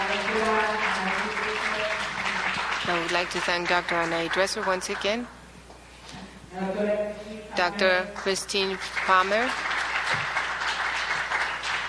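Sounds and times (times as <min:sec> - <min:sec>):
audience applause at an academic presentation: 0:00.0 - 0:05.2, 0:08.2 - 0:11.8
speech: 0:02.9 - 0:05.4, 0:06.5 - 0:10.3.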